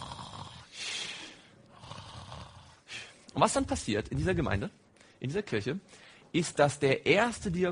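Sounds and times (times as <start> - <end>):
person imitating snoring of someone asleep during a church sermon: 0.0 - 1.2, 1.8 - 3.1
speech: 3.4 - 7.7.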